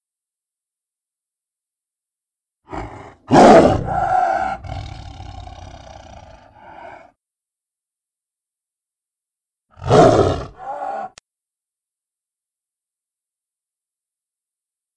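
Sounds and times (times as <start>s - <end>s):
tiger roaring: 2.7s - 7.1s, 9.8s - 11.2s.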